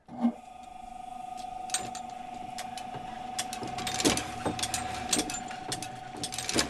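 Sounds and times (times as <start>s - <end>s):
century-old printing press machines motor hum: 0.3s - 6.6s
century-old printing press machines metallic clacks and clicks: 1.7s - 6.6s.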